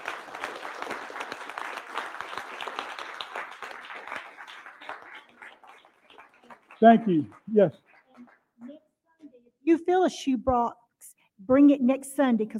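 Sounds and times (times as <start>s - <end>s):
large audience applauding veterans at a church service: 0.0s - 8.8s
speech: 6.8s - 7.8s, 9.8s - 10.8s, 11.5s - 12.5s.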